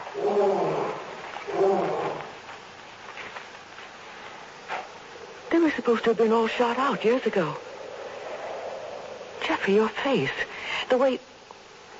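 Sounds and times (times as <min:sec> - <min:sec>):
lion roaring: 0:00.0 - 0:02.4
speech: 0:05.6 - 0:07.7, 0:09.6 - 0:11.3.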